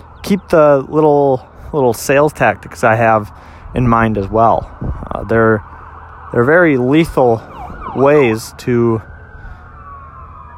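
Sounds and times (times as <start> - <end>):
fire truck siren wailing while passing: 0.0 - 1.6, 4.7 - 10.5
low rumble of street traffic: 0.0 - 10.5
speech: 0.3 - 5.7, 6.3 - 9.1.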